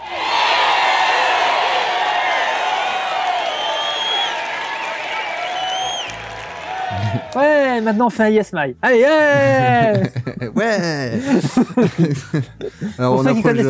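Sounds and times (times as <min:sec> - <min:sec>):
loud dense crowd cheering and whooping: 0:00.0 - 0:07.6
scattered clapping: 0:02.6 - 0:07.5
laughter: 0:06.9 - 0:08.2, 0:09.3 - 0:13.6
speech: 0:07.1 - 0:13.6.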